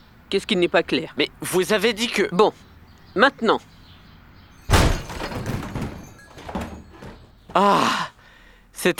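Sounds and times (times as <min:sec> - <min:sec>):
speech: 0:00.3 - 0:03.7, 0:07.6 - 0:08.1, 0:08.8 - 0:08.9
door bursting open with a heavy crash as people charge it: 0:04.7 - 0:06.1.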